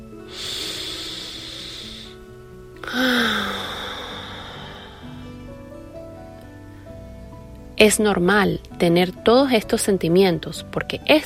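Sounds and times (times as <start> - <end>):
deep breathing during a calming exercise: 0.2 - 5.7
soft voiced sigh on exhale: 2.8 - 5.3
speech: 2.9 - 3.2, 7.8 - 11.2.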